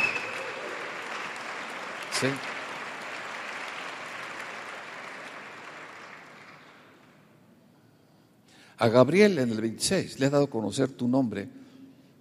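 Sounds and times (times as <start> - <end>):
audience applauding: 0.0 - 7.2
speech: 2.2 - 2.5, 8.8 - 11.6.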